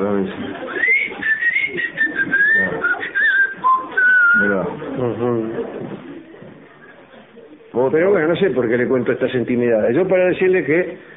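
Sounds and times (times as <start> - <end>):
speech: 0.0 - 0.7, 7.9 - 11.1
soft murky low noise: 0.0 - 11.1
person whistling a wavering melody: 0.8 - 4.4.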